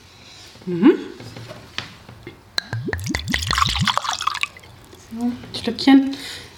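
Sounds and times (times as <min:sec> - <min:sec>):
speech: 0:00.7 - 0:01.8, 0:05.2 - 0:06.3
mead liqueur glugging out of a bottle into glasses: 0:02.6 - 0:05.2.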